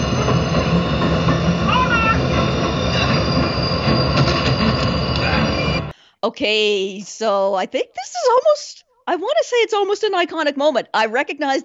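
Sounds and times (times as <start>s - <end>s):
train rumbling along the rails: 0.0s - 6.0s
speech: 6.2s - 11.6s.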